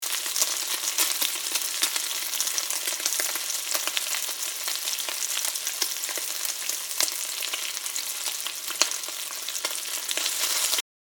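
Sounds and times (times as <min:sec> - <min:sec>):
bacon frying, crackling and sizzling in a frying pan: 0:00.0 - 0:10.8.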